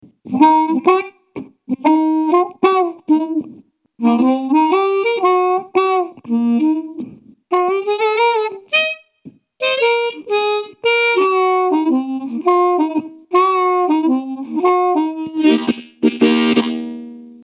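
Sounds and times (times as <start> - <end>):
medium hard blues music: 0.0 - 8.9, 9.6 - 17.4.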